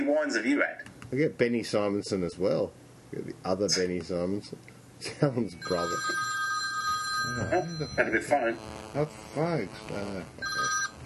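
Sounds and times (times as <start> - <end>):
speech: 0.1 - 6.2, 7.2 - 10.7
telephone ringing with an electronic trill: 5.6 - 11.0.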